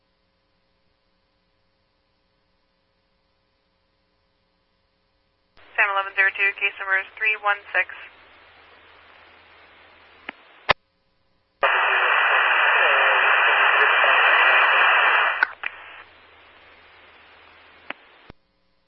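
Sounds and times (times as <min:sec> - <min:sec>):
faint low hum: 0:00.0 - 0:18.8
harsh radio static from an unreadable radio transmission: 0:05.6 - 0:10.8, 0:11.6 - 0:18.3
speech: 0:05.7 - 0:08.2
quiet radio keying clicks: 0:11.6 - 0:18.3.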